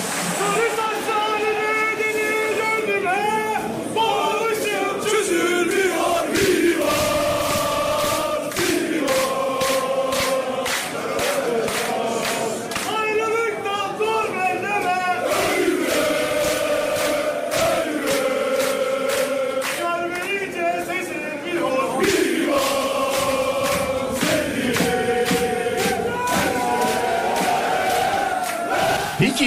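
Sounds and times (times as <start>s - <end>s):
big crowd of football fans chanting loudly in unison before a derby match: 0.0s - 29.4s
rhythmic claps or drum hits: 5.1s - 13.5s, 14.8s - 29.4s.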